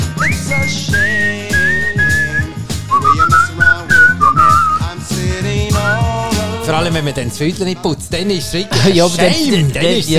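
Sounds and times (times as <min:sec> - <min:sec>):
person whistling a melody in a clear sustained tone: 0:00.0 - 0:05.0, 0:05.7 - 0:06.1
backing music with a steady rhythmic pulse: 0:00.0 - 0:10.1
speech: 0:06.7 - 0:10.1.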